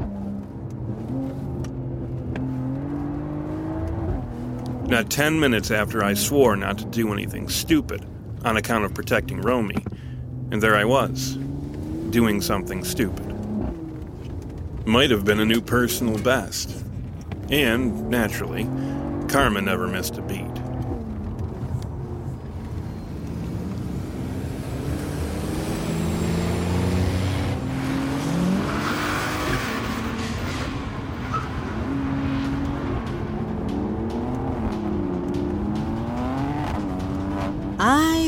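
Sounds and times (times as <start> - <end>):
heavy engines of trucks mounted with machine guns revving: 0.0 - 38.2
speech: 4.9 - 9.9, 10.5 - 11.4, 12.1 - 13.3, 14.9 - 16.8, 17.5 - 20.5
tire squeal: 28.2 - 33.0.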